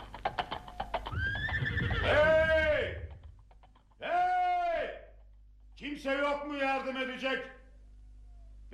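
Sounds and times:
horse broken loose from its cart harness whinnying: 0:00.4 - 0:03.4
speech: 0:06.1 - 0:07.6.

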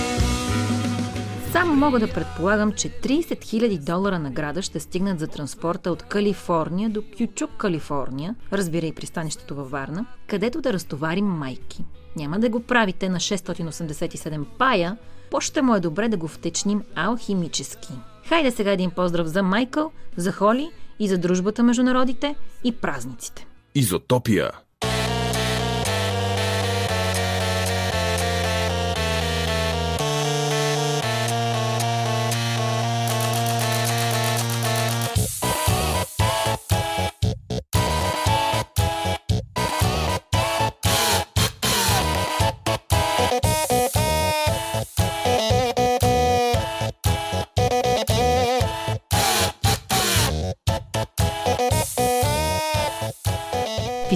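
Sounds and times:
tune played by printers, POS terminals, electric toothbrushes, epilators and irons: 0:00.0 - 0:02.3, 0:24.8 - 0:54.1
speech: 0:01.6 - 0:24.6.

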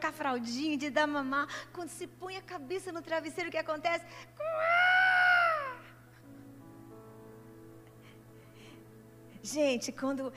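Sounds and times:
speech: 0:00.0 - 0:04.9, 0:09.4 - 0:10.3
baby wailing at night: 0:04.4 - 0:06.0.

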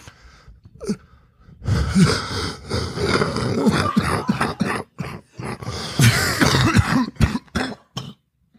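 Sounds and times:
gasping breaths between coughs: 0:00.0 - 0:04.0, 0:05.1 - 0:06.2
person with an upper respiratory infection and high fever coughing harshly: 0:03.0 - 0:08.3.

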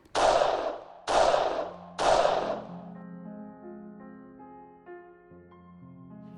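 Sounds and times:
loud heavy gunshots of police shooting at a car: 0:00.1 - 0:02.7.

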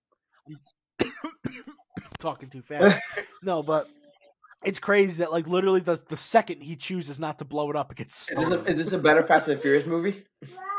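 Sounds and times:
speech: 0:00.5 - 0:00.8, 0:02.2 - 0:04.0, 0:04.6 - 0:10.6
harsh loud coughs: 0:01.0 - 0:02.2, 0:02.8 - 0:03.4.

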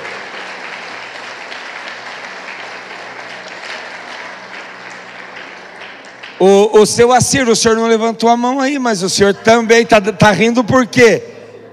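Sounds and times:
church audience applauding: 0:00.0 - 0:06.7
speech: 0:06.4 - 0:11.3.

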